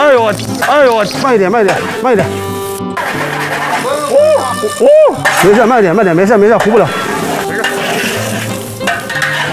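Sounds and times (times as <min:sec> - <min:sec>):
food stir-frying in a pan: 0:00.0 - 0:09.5
speech: 0:00.3 - 0:03.7, 0:04.3 - 0:07.0
spatula scraping and pushing against a pan: 0:03.0 - 0:04.1, 0:05.2 - 0:09.5.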